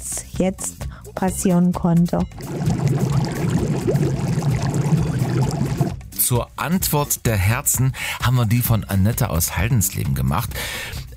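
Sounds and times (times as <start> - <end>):
speech: 0.4 - 3.1, 3.9 - 4.5, 6.3 - 11.1
bubbling water churning in a private jacuzzi: 2.3 - 6.1.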